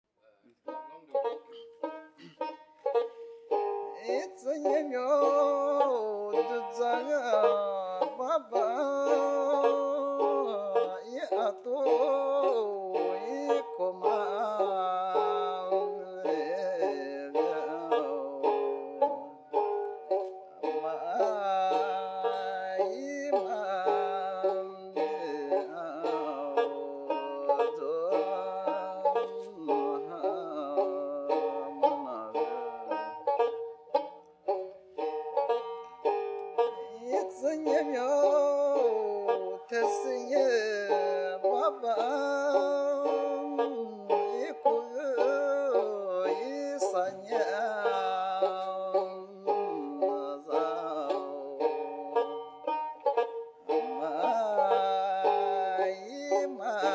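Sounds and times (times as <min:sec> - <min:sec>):
Lisu song with banjo: 0:00.2 - 0:56.9.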